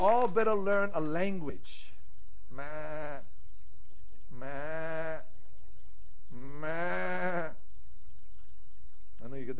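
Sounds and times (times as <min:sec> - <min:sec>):
speech: 0:00.0 - 0:03.3, 0:09.4 - 0:09.5
person imitating a goat or sheep bleat: 0:02.5 - 0:03.3, 0:04.3 - 0:05.3, 0:06.4 - 0:07.6.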